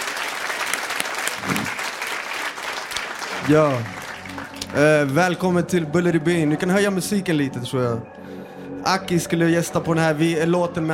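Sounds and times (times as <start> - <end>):
dense audience applause: 0.0 - 5.2
speech: 3.5 - 4.0, 4.7 - 8.2, 8.8 - 10.9.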